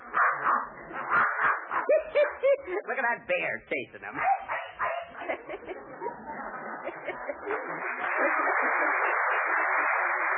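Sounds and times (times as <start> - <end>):
dog barking and yipping: 0.0 - 2.6, 4.2 - 5.4
laughter: 1.8 - 2.9, 4.8 - 10.3
speech: 2.7 - 4.4.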